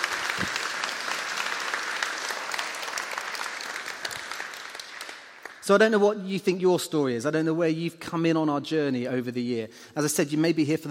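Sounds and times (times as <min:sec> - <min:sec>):
audience applause: 0:00.0 - 0:05.6
speech: 0:05.7 - 0:10.8.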